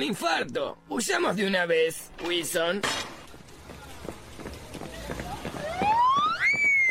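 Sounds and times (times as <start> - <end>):
speech: 0.0 - 3.1
hurried footsteps: 3.2 - 6.8
police car siren wailing: 5.5 - 6.8.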